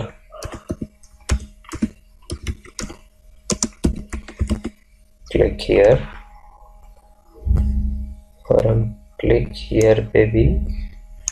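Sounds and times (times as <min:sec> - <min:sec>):
typing on a computer keyboard: 0:00.4 - 0:04.8
speech: 0:05.4 - 0:06.2, 0:08.6 - 0:10.8.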